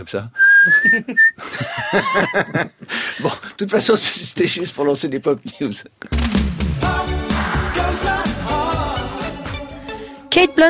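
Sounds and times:
speech: 0.0s - 6.3s, 10.3s - 10.6s
person whistling a high note: 0.4s - 1.4s
laughter: 0.7s - 3.6s
noisy commotion: 6.1s - 9.6s.

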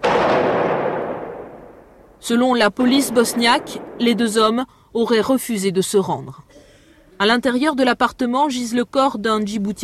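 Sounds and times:
gunfire reverberating through enclosed rooms in a building: 0.0s - 2.2s, 2.8s - 4.6s
speech: 2.2s - 6.4s, 7.2s - 9.8s.

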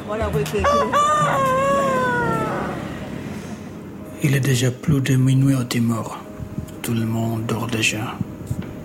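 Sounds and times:
speech: 0.1s - 1.7s, 4.2s - 6.2s, 6.9s - 8.6s
rooster crowing at a cockfighting arena: 0.5s - 3.2s.

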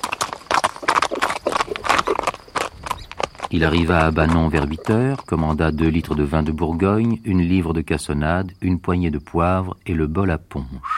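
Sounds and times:
ridden horse's hooves trotting: 0.0s - 8.0s
speech: 3.5s - 10.9s.

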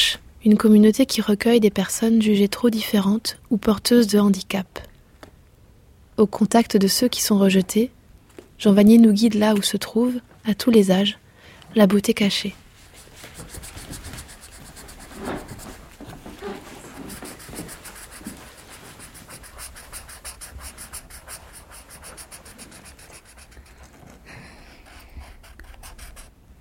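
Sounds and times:
speech: 0.4s - 4.9s, 6.2s - 8.0s, 8.6s - 12.6s
hand drawing a flower and a sun, dry scratching and rubbing strokes: 12.8s - 26.3s.

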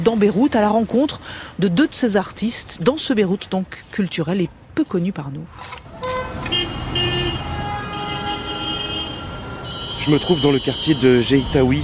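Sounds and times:
speech: 0.0s - 5.8s, 10.0s - 11.8s
busy rush-hour street traffic rumbling in Beirut Lebanon: 0.0s - 11.8s
car horns tooting and honking in Beirut street traffic: 5.8s - 11.5s.

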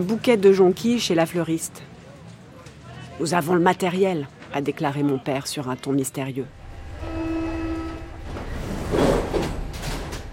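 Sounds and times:
speech: 0.0s - 1.9s, 3.2s - 6.6s
metro train running to station: 6.5s - 10.3s
sustained whining tone of metro train: 6.5s - 10.3s.

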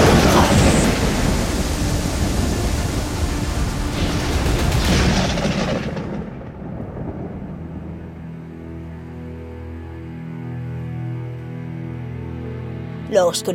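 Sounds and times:
deep rolling thunder in a thunderstorm: 0.0s - 8.8s
heavy rain in a thunderstorm: 0.0s - 9.0s
speech: 13.2s - 13.5s.

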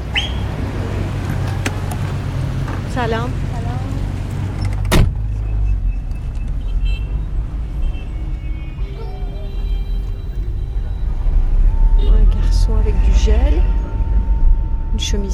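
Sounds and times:
taxi engine and road rumble in congested traffic in Tehran: 0.0s - 15.3s
speech: 3.0s - 3.4s
taxi door thud: 4.8s - 5.2s.

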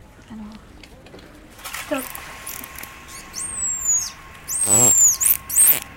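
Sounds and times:
steady underwater hiss: 1.6s - 5.9s
speech: 1.9s - 2.2s
dolphin signature whistle recorded underwater: 3.1s - 5.9s.

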